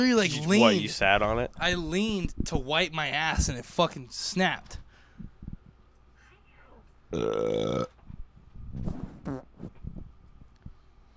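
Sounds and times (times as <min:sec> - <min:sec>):
speech: 0:00.0 - 0:04.8, 0:07.1 - 0:07.9
loud buzzy fart: 0:08.8 - 0:09.8.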